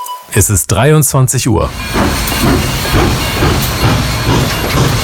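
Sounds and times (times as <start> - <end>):
speech: 0.3 - 3.9
car-carrying shuttle train departing at night, hiss and rumble: 1.5 - 5.0
train wheels clacking over rail joints: 1.7 - 5.0.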